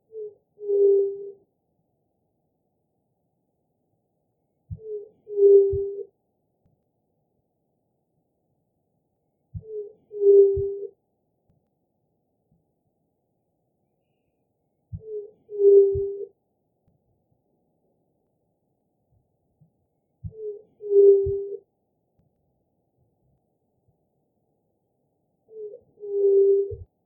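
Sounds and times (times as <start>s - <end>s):
juriti-pupu dove calling: 0.1s - 1.4s, 4.7s - 6.1s, 9.6s - 10.9s, 14.9s - 16.3s, 20.2s - 21.6s, 25.5s - 26.9s.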